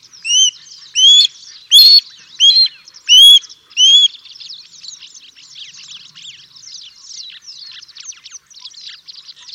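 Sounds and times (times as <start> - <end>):
osprey giving whistled notes: 0.3 - 4.1.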